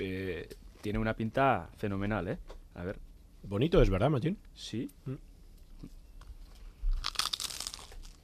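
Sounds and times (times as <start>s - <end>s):
speech: 0.5s - 6.0s
brittle crackling and crumbling of a pincho: 6.9s - 8.2s
crisp bite into a crunchy pincho with mayonnaise: 6.9s - 8.2s.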